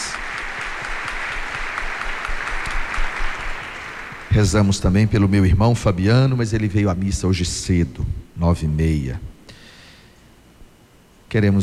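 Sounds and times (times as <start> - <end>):
audience applauding in a large room: 0.0 - 4.9
speech: 4.4 - 9.3, 11.3 - 11.6.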